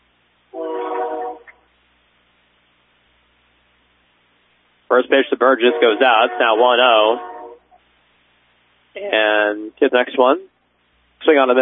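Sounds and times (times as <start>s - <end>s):
train horn blast: 0.6s - 1.5s, 5.5s - 7.7s
speech: 4.9s - 7.3s, 9.0s - 10.5s, 11.2s - 11.5s.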